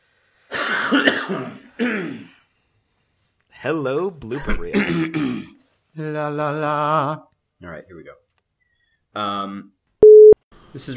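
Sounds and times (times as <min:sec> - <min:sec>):
person clearing throat: 0:00.6 - 0:02.4, 0:04.6 - 0:05.6
speech: 0:03.6 - 0:08.2, 0:09.2 - 0:09.8, 0:10.8 - 0:10.9.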